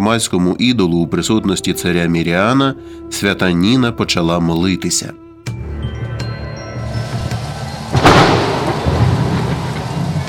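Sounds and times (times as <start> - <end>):
speech: 0.0 - 5.6
steady thunderstorm rain hissing: 6.8 - 10.2
loud thunder crack rolling into rumble: 7.0 - 10.2.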